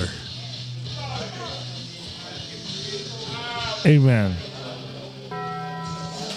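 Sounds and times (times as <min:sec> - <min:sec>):
speech: 0:03.8 - 0:04.5
bell chime: 0:05.3 - 0:06.3.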